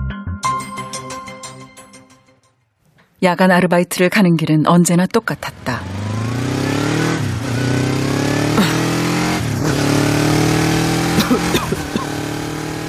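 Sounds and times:
speech: 3.2 - 5.9
motorcycle engine riding along a dark country road and dirt track: 5.4 - 12.8.

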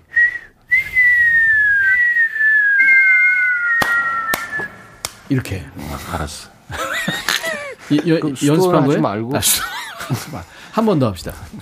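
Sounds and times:
several people whistling together: 0.0 - 5.0
sharp popping bursts: 2.6 - 5.3
speech: 5.3 - 6.8, 7.9 - 11.6
laughter: 6.7 - 10.7.

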